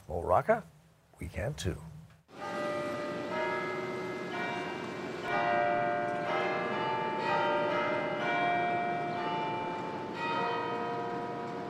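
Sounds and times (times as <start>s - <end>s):
speech: 0.1s - 2.0s
large cathedral church bells pealing: 2.3s - 11.6s.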